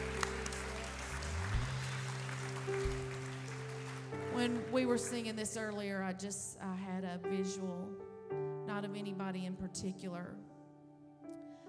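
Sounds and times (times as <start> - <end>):
low sustained organ-like tone: 0.0 - 4.0
crowd clapping hands: 0.0 - 5.8
speech: 4.4 - 8.1, 8.7 - 10.5.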